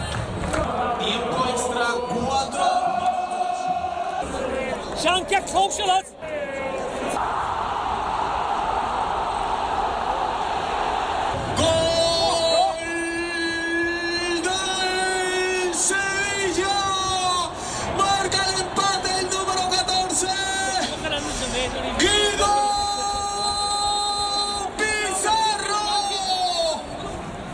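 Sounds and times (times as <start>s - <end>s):
packed stadium crowd cheering and shouting after a goal: 0.0s - 27.5s
speech: 5.0s - 6.2s.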